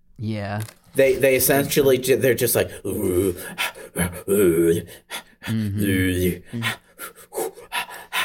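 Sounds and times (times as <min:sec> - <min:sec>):
speech: 0:00.2 - 0:07.2
voice imitating rhythmic breathy panting music: 0:02.8 - 0:08.2.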